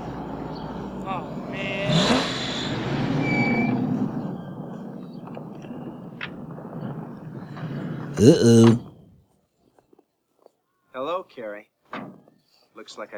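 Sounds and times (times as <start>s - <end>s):
old run-down car engine cranking, catching and revving: 0.0s - 9.0s
speech: 8.2s - 8.9s, 12.8s - 13.1s.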